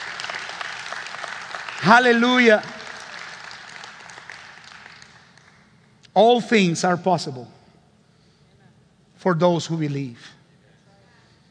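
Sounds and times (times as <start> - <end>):
congregation clapping: 0.0 - 5.8
speech: 1.8 - 2.8, 6.2 - 7.6, 9.2 - 10.4.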